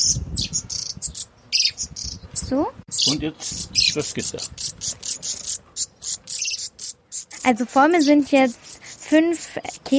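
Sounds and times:
young redstarts chirping, begging for food: 0:00.0 - 0:09.9
speech: 0:02.5 - 0:05.0, 0:07.4 - 0:09.9.

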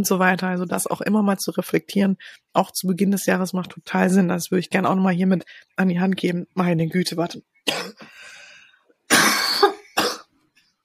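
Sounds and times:
speech: 0:00.0 - 0:08.0
harsh raspy coughing fit: 0:07.7 - 0:08.1, 0:09.1 - 0:10.2.

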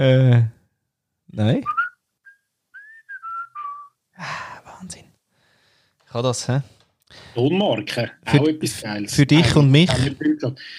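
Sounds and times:
speech: 0:00.0 - 0:00.6, 0:01.3 - 0:01.8, 0:06.1 - 0:10.7
person whistling a brand jingle: 0:01.7 - 0:04.0.

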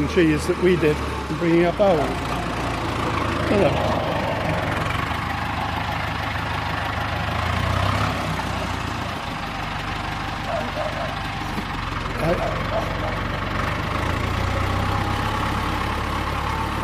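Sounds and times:
speech: 0:00.0 - 0:02.4, 0:03.5 - 0:04.6
tractor engine idling: 0:00.0 - 0:16.8.

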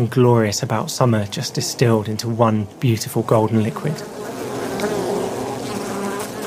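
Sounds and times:
speech: 0:00.0 - 0:05.1
swarm of bees buzzing around a beehive: 0:00.6 - 0:06.4.

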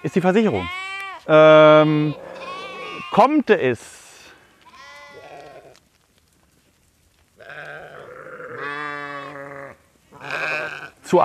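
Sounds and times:
speech: 0:00.0 - 0:02.4, 0:03.1 - 0:04.0, 0:11.1 - 0:11.2
herd of livestock bleating: 0:00.0 - 0:03.4, 0:04.6 - 0:05.8, 0:07.4 - 0:11.1.

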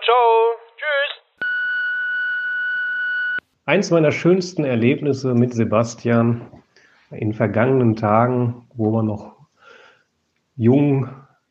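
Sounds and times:
steady electronic answering machine beep tone: 0:01.4 - 0:03.4
speech: 0:03.7 - 0:09.4, 0:10.6 - 0:11.5.

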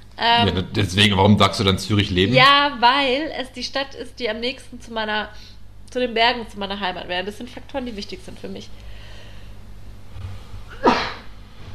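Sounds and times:
speech: 0:00.2 - 0:08.9
sneeze: 0:10.7 - 0:11.3.

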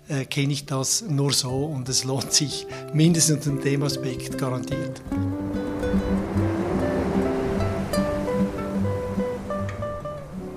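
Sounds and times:
speech: 0:00.1 - 0:06.2
ocean waves breaking on shore: 0:03.4 - 0:10.5.

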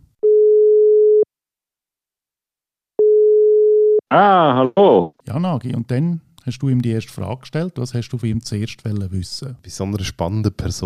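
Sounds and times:
telephone line tone beeps as call is answered: 0:00.2 - 0:01.3, 0:03.0 - 0:04.0
speech: 0:04.1 - 0:10.8.

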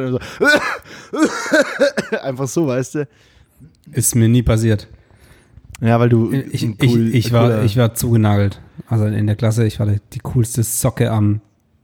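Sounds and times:
laughter: 0:00.0 - 0:02.5
speech: 0:00.0 - 0:05.0, 0:05.8 - 0:11.5
person faking loud throaty coughs: 0:00.3 - 0:02.3.

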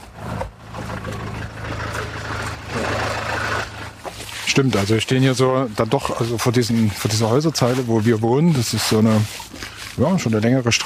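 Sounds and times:
parked car engine idling: 0:00.0 - 0:05.9
speech: 0:04.6 - 0:10.8.

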